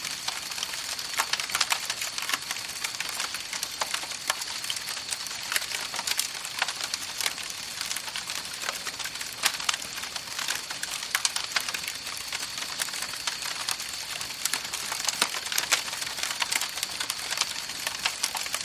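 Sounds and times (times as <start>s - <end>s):
campfire crackling in the countryside: 0.0s - 18.6s.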